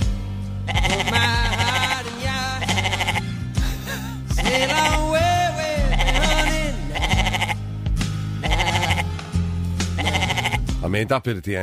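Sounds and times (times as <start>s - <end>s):
steady musical backing with sustained low bass notes: 0.0s - 11.3s
goat bleating in wavering quavering calls: 0.6s - 3.4s, 4.3s - 7.7s, 8.4s - 9.3s, 9.9s - 10.8s
speech: 11.0s - 11.6s.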